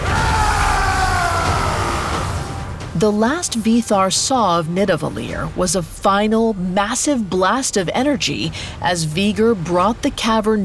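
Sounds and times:
man yelling a roaring battle cry: 0.0 - 2.4
speech: 3.0 - 10.6.

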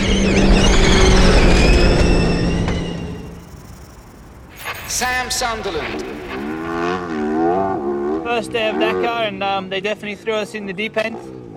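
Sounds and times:
electric motor whine of an off-road rally car accelerating: 0.0 - 8.8
drivetrain roar of an electric off-road rally car accelerating: 0.0 - 11.5
speech: 5.2 - 6.1, 8.3 - 11.4.

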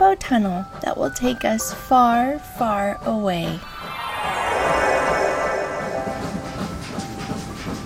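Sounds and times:
speech: 0.0 - 3.7
train rumbling along tracks through a city at night: 3.7 - 7.8.

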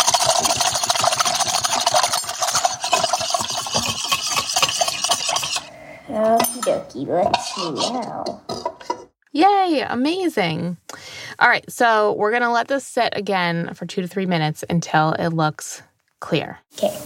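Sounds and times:
whisk clicking and scraping against a bowl, whisking sugar into warm water: 0.0 - 5.7, 6.6 - 9.1
speech: 6.7 - 8.5, 9.4 - 17.0.

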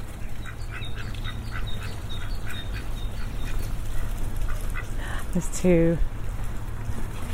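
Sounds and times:
steady outdoor rumble on a farm: 0.0 - 7.3
farm birds including geese honking and quacking by a lamb shed: 0.2 - 5.0
speech: 5.3 - 6.1.

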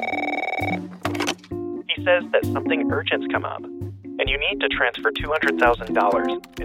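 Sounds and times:
office telephone ringing with electronic warble: 0.0 - 0.9
speech: 0.6 - 1.0, 2.0 - 6.6.

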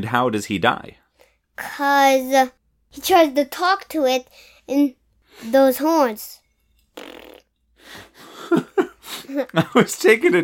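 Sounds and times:
speech: 0.0 - 1.0, 1.6 - 6.4, 9.3 - 10.4
fart-like sputters made with the mouth while drinking: 6.8 - 7.6.

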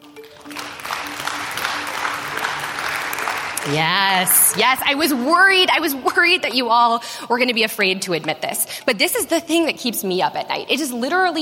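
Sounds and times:
live audience applause with dense clapping: 0.0 - 5.7
speech: 3.6 - 11.4.

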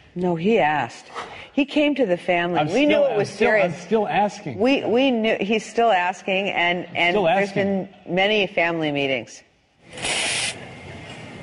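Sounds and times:
speech: 0.2 - 10.1
espresso machine steam wand hissing while steaming milk: 9.9 - 10.6.

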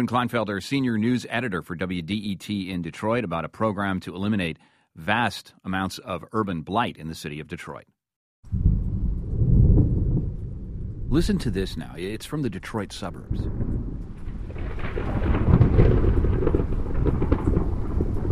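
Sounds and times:
speech: 0.0 - 7.9, 8.5 - 8.7, 11.1 - 13.8
deep rolling rumbles: 8.5 - 18.3
steady rain: 8.5 - 18.3.

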